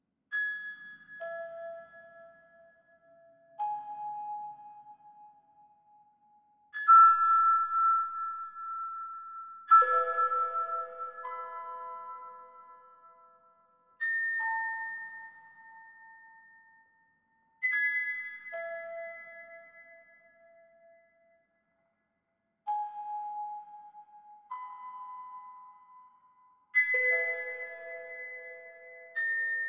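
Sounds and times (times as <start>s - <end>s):
creepy music box melody: 0.4s - 21.6s, 22.6s - 29.6s.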